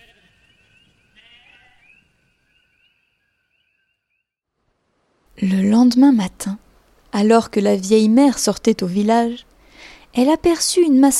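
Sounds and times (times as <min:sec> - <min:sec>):
fleeing ewe bleating frantically: 0:01.2 - 0:01.9
speech: 0:05.4 - 0:11.1.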